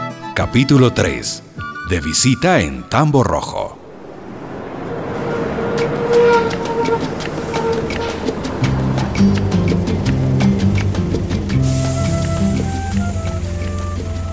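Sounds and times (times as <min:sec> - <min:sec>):
speech: 0:00.5 - 0:03.8
bus engine rumble changing gear on a road: 0:03.8 - 0:14.3
rattles and clicks from the moving bus: 0:05.4 - 0:14.3.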